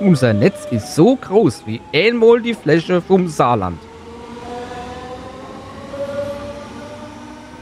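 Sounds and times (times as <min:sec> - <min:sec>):
speech: 0:00.0 - 0:03.9
S-Bahn commuter train in Saarland rolling along the rails: 0:00.0 - 0:07.5.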